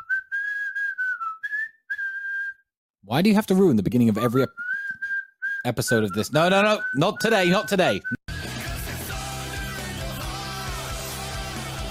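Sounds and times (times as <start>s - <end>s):
person whistling a tune: 0.0s - 2.7s, 4.2s - 8.2s
speech: 3.0s - 4.6s, 5.6s - 8.2s.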